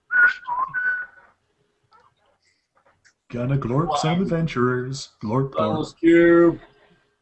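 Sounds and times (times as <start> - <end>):
person whistling a short three-note phrase: 0.1 - 1.3
speech: 3.3 - 6.7.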